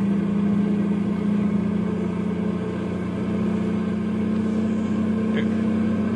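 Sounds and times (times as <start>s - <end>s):
heavy truck engine droning on downhill run in the mountains: 0.0s - 6.1s.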